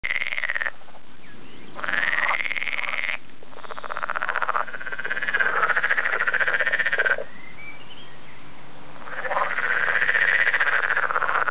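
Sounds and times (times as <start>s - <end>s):
Edible frog croaking: 0.0s - 0.8s, 1.8s - 7.3s, 9.0s - 11.4s.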